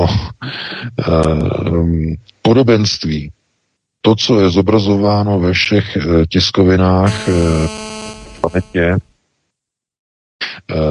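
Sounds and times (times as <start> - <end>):
speech: 1.1 - 3.4, 4.0 - 9.1, 10.4 - 10.9
telephone buzzing with a steady electronic tone: 7.1 - 9.0.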